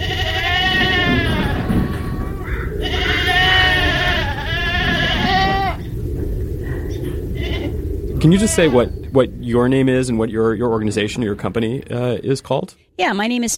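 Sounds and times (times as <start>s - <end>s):
goats bleating: 0.0s - 5.9s, 7.0s - 8.9s
low steady rumble: 0.0s - 13.5s
speech: 8.2s - 13.5s.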